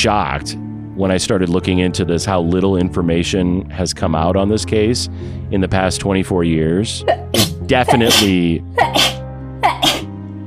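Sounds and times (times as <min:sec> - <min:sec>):
speech: 0:00.0 - 0:09.2
person sneezing: 0:07.1 - 0:10.1.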